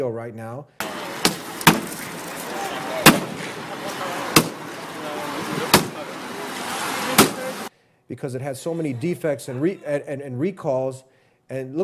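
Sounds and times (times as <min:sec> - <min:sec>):
speech: 0:00.0 - 0:01.4, 0:08.1 - 0:11.8
heavy blows smashing a car: 0:00.8 - 0:03.7, 0:04.3 - 0:04.8, 0:05.4 - 0:06.1, 0:07.1 - 0:07.6.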